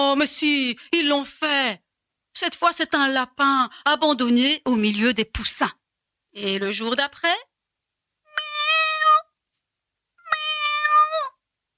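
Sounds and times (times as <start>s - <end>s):
speech: 0.0s - 1.8s, 2.4s - 7.5s
dwarf kitten meowing in a home: 8.3s - 9.3s, 10.2s - 11.4s.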